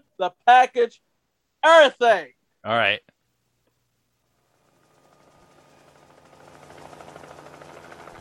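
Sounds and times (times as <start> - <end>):
speech: 0.2 - 3.1
helicopter rotor chopping in a played video: 4.3 - 8.1.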